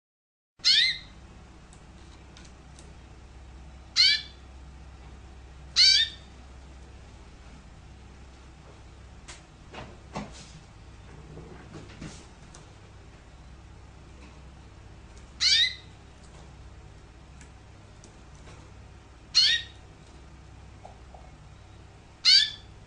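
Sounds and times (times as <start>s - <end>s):
canary chirping: 0.6s - 1.2s, 3.9s - 4.4s, 5.7s - 6.4s, 15.2s - 16.4s, 19.2s - 19.9s, 21.4s - 22.8s.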